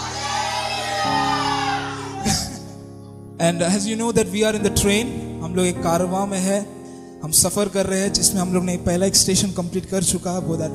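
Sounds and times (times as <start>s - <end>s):
audience shouting hallelujah: 0.0s - 2.7s
speech: 3.4s - 10.7s.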